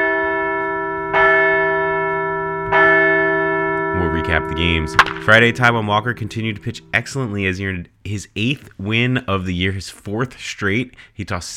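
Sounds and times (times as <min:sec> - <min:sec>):
large bell ringing: 0:00.0 - 0:07.8
speech: 0:04.3 - 0:11.5.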